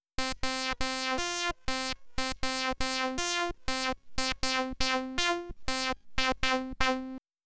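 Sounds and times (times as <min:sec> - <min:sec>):
synth with no shift: 0:01.0 - 0:07.2.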